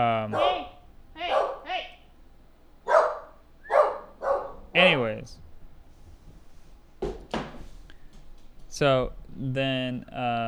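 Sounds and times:
speech: 0:00.0 - 0:00.6, 0:04.8 - 0:05.5, 0:08.8 - 0:10.4
dog barking wildly: 0:00.0 - 0:06.0.

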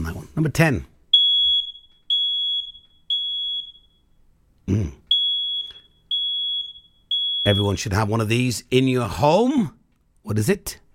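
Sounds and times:
speech: 0:00.4 - 0:00.9, 0:04.7 - 0:05.0, 0:07.5 - 0:10.8
smoke alarm beeping loudly: 0:01.1 - 0:04.4, 0:05.1 - 0:08.1.

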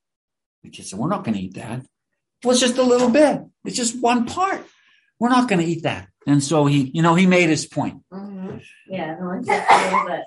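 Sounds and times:
speech: 0:00.6 - 0:10.2
person sneezing: 0:09.5 - 0:10.1.

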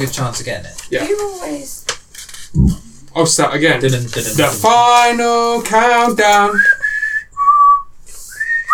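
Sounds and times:
speech: 0:00.0 - 0:01.9, 0:02.5 - 0:06.8
person whistling a short melody: 0:06.5 - 0:08.7.

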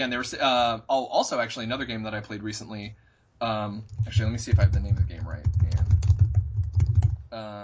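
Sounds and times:
speech: 0:00.0 - 0:06.1, 0:07.3 - 0:07.6
typing on a computer keyboard: 0:03.9 - 0:07.2.

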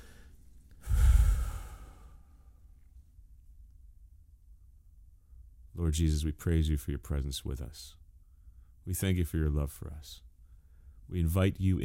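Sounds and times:
deep breath drawn in and let out: 0:00.0 - 0:02.7, 0:08.2 - 0:08.8, 0:10.4 - 0:11.1
speech: 0:05.8 - 0:08.0, 0:08.8 - 0:10.3, 0:11.1 - 0:11.8.

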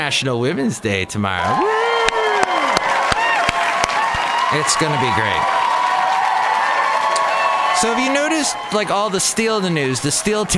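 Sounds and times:
speech: 0:00.0 - 0:01.9, 0:04.5 - 0:05.6, 0:07.8 - 0:10.5
whoops and whistles: 0:01.6 - 0:04.4
crowd clapping in rhythm: 0:01.6 - 0:10.5.

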